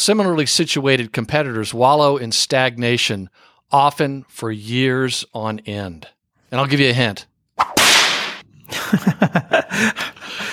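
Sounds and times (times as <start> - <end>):
speech: 0.0 - 7.7, 8.9 - 10.5
whip crack trailing off in a bright hiss: 7.6 - 8.4
laughter: 8.7 - 10.5.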